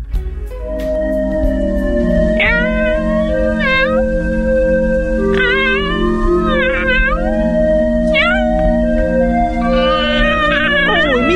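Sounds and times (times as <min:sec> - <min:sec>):
steady humming background: 0:00.1 - 0:11.3
cat meowing: 0:02.3 - 0:11.3.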